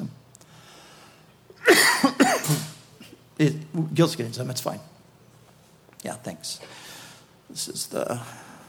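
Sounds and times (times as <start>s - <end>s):
dry hacking coughs: 1.6s - 3.2s
speech: 3.4s - 5.0s, 6.0s - 6.9s, 7.5s - 8.5s.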